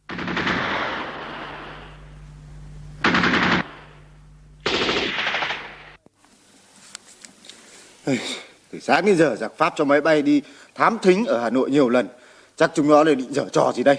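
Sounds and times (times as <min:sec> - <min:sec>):
distant machine-gun fire in wartime Hanoi: 0:00.0 - 0:02.1, 0:03.0 - 0:06.0
speech: 0:08.1 - 0:13.9.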